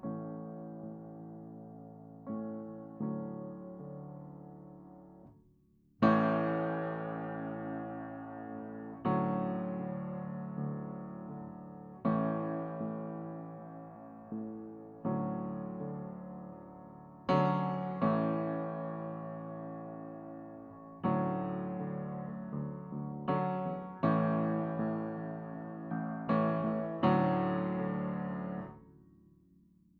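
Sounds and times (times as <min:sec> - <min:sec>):
piano verse: 0:00.0 - 0:29.9.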